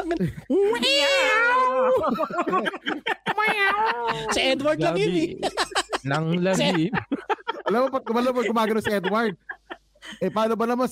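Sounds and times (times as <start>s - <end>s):
speech: 0.1s - 7.1s, 7.7s - 10.9s
person imitating a howling cat: 0.7s - 2.0s
laughter: 1.8s - 10.6s.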